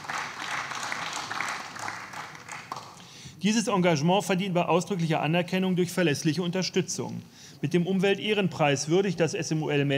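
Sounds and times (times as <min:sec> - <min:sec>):
room full of people applauding: 0:00.0 - 0:03.0
speech: 0:03.4 - 0:09.9.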